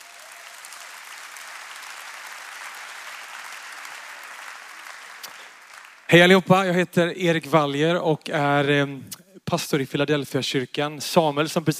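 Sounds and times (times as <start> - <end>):
audience applause: 0.0 - 6.4
speech: 6.1 - 11.7.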